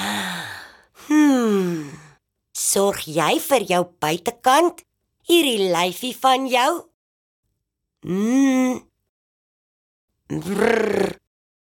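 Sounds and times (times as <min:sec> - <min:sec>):
deep breath voiced like a sigh: 0:00.0 - 0:02.2
speech: 0:02.7 - 0:06.9, 0:08.0 - 0:08.9, 0:10.3 - 0:11.2.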